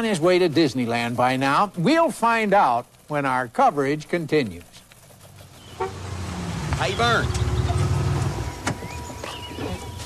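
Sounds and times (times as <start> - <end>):
speech: 0.0 - 4.8, 6.8 - 7.4
car engine rumbling low and steady: 5.1 - 10.0
car power windows whirring: 5.7 - 10.0.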